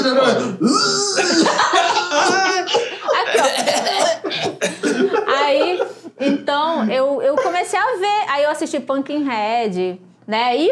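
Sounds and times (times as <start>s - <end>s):
speech: 0.0s - 1.0s, 7.7s - 10.7s
person imitating a raspy, growling cough: 0.0s - 5.2s
voiced vocal noises: 0.0s - 7.6s
laughter: 1.2s - 6.0s.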